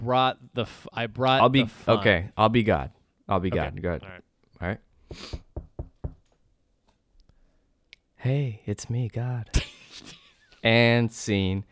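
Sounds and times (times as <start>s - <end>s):
speech: 0.0s - 5.4s, 8.2s - 11.7s
firm knocks on a door: 5.3s - 6.3s.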